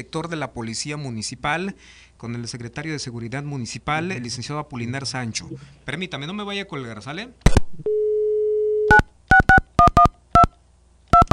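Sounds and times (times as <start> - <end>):
speech: 0.0 - 8.0
touch-tone dialing beeps: 7.9 - 10.5, 11.1 - 11.3.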